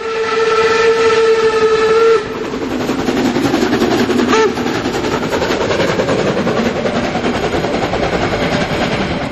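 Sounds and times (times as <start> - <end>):
steam locomotive whistle blast: 0.0 - 2.4, 4.3 - 4.7
steam locomotive chugging uphill: 0.0 - 9.3.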